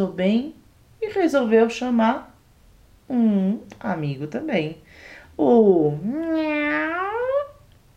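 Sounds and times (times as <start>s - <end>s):
speech: 0.0s - 2.3s, 3.1s - 7.2s
long drawn-out cat meow: 6.1s - 7.6s.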